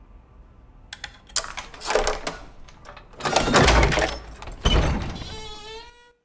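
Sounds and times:
key rattling in the lock of an attic door: 1.0s - 4.9s
attic door scraping clunks: 1.4s - 6.0s.

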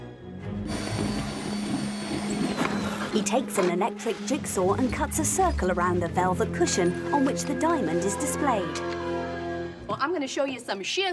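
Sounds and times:
power drill drilling a hole through glass display case base: 0.7s - 3.3s
speech: 3.1s - 9.0s, 10.0s - 11.1s.

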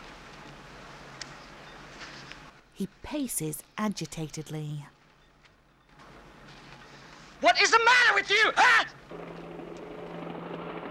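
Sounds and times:
speech: 2.8s - 4.9s, 7.5s - 8.9s
helicopter closing in with rotor and engine noise: 9.1s - 10.8s.

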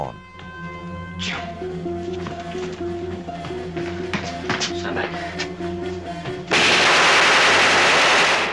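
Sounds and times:
low tonal hum: 0.0s - 6.5s
speech: 1.2s - 2.3s
gunshot blasting through a cell door lock: 6.5s - 8.5s.

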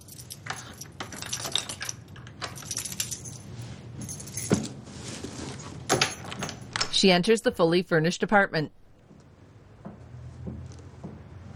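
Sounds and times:
keys jangling at an apartment door: 0.0s - 4.6s
speech: 7.0s - 8.8s.

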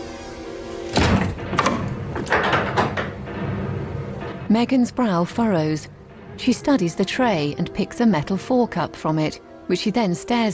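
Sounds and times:
door thudding shut: 0.9s - 4.5s
speech: 4.5s - 10.5s.

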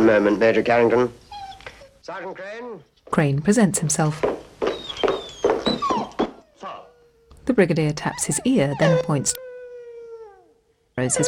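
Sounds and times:
speech: 0.0s - 1.2s, 2.1s - 4.4s, 7.5s - 9.4s, 11.0s - 11.2s
dog whining with thin tones: 1.2s - 2.0s, 4.6s - 11.2s.

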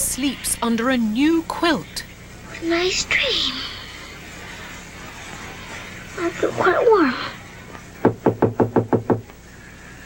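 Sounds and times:
speech: 0.2s - 3.8s, 6.2s - 7.4s
knuckles tapping on a window above a bed: 8.0s - 9.4s.

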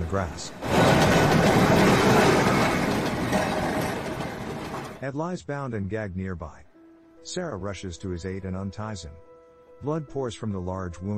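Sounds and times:
tram passing on a busy street: 0.0s - 5.0s
tram wheels rattling on rails: 0.0s - 5.0s
speech: 0.1s - 1.4s, 5.0s - 6.6s, 7.2s - 11.1s.

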